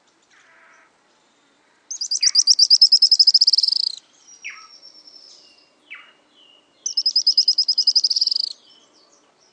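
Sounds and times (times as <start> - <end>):
Araucaria tit-spinetail Leptasthenura setaria giving dry high trills: 1.9 - 4.8, 6.8 - 8.6
Araucaria tit-spinetail thin whistles: 1.9 - 6.2, 6.8 - 8.6.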